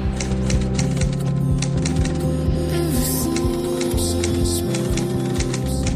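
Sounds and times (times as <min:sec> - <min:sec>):
typewriter clacking: 0:00.1 - 0:02.2, 0:03.3 - 0:05.9.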